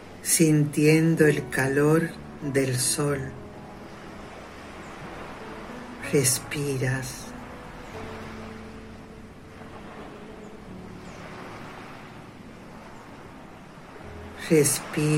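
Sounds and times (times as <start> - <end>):
ocean waves washing onto a sunny seashore: 0.0 - 15.1
speech: 0.2 - 3.4, 6.1 - 7.2, 14.5 - 15.1.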